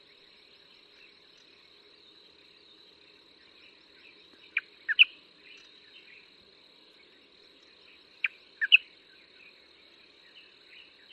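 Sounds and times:
light-vented bulbul calling: 0:04.5 - 0:05.7, 0:08.2 - 0:08.9.

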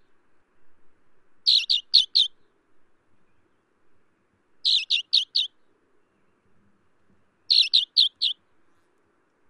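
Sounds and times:
Alpine accentor calling: 0:01.4 - 0:02.5, 0:04.6 - 0:06.4, 0:07.5 - 0:08.4.

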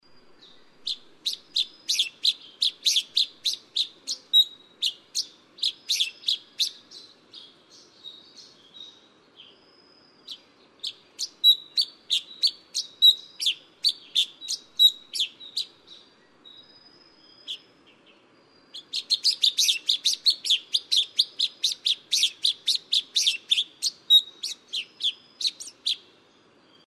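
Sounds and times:
black bulbul: 0:00.4 - 0:07.6, 0:10.3 - 0:16.1, 0:18.7 - 0:26.1.

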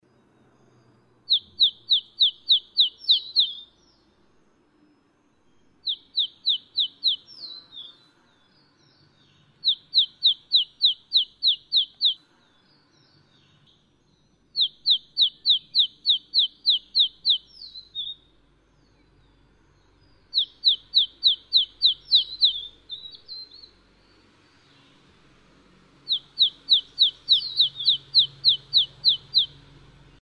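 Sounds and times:
green-backed tit: 0:01.3 - 0:03.8, 0:05.8 - 0:08.1, 0:09.6 - 0:12.2, 0:14.6 - 0:18.2, 0:20.1 - 0:25.0, 0:26.0 - 0:29.8.

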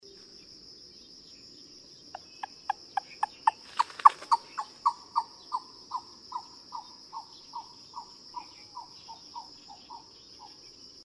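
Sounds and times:
lesser coucal calling: 0:02.1 - 0:10.6.

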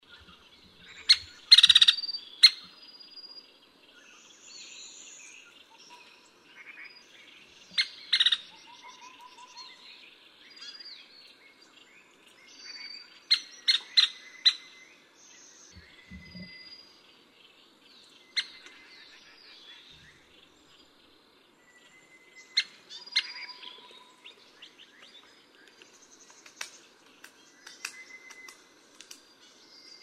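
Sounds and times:
small woodpecker: 0:00.1 - 0:02.8, 0:05.7 - 0:09.8, 0:13.3 - 0:14.7, 0:22.5 - 0:29.3.

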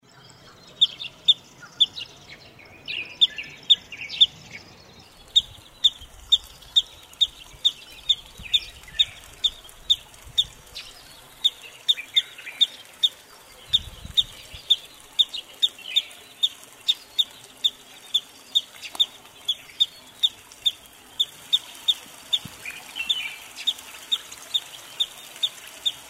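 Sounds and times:
wood sandpiper calling: 0:02.8 - 0:26.0.

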